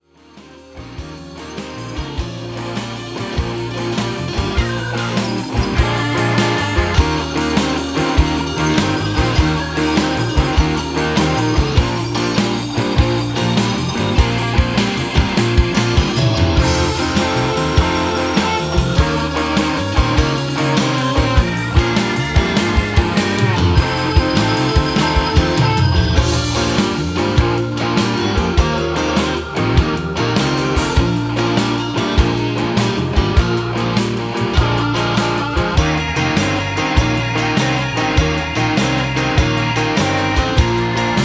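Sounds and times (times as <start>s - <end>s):
blues music in B flat: 0.0s - 41.2s.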